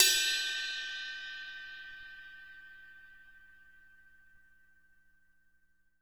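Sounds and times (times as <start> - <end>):
crash cymbal bell: 0.0 - 4.1.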